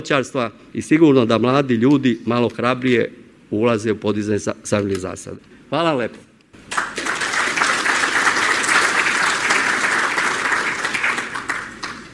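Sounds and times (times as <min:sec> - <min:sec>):
speech: 0:00.0 - 0:06.3
applause after a fruit-growing lecture at an international agricultural fair: 0:06.6 - 0:12.1.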